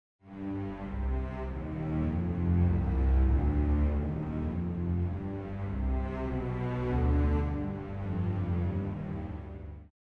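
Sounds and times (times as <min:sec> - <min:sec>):
orchestra playing a miniature: 0:00.4 - 0:09.9.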